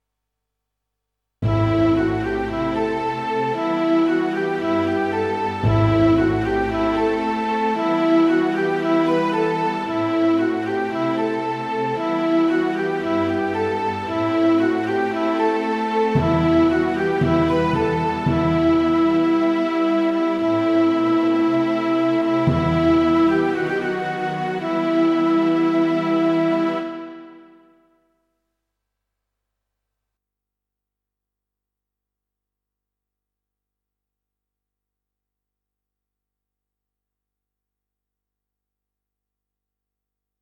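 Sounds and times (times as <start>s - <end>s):
small orchestra riff in E minor: 1.4s - 27.6s.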